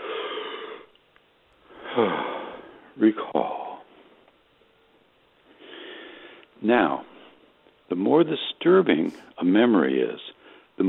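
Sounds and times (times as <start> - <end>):
person yawning: 1.8 - 2.7
speech: 2.0 - 2.3, 3.0 - 3.6, 6.6 - 7.1, 7.9 - 10.8.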